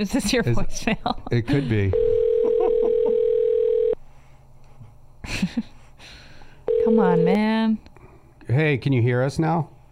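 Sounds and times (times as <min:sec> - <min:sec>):
speech: 0:00.0 - 0:02.1, 0:05.2 - 0:05.7, 0:06.9 - 0:07.9, 0:08.5 - 0:09.7
telephone dial tone after hanging up a call: 0:02.0 - 0:04.0, 0:06.7 - 0:07.3.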